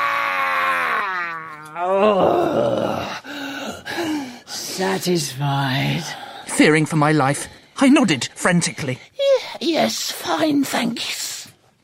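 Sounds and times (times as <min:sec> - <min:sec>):
person moaning in pain with cracked ribs: 0:00.0 - 0:04.2
speech: 0:02.0 - 0:02.8, 0:04.9 - 0:11.2.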